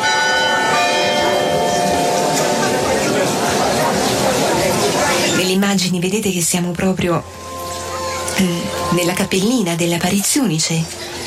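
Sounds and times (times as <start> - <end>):
murmur of crowd chatter: 0.0 - 11.2
sanctuary church bells ringing: 0.0 - 11.2
speech: 5.8 - 7.4, 8.4 - 11.2.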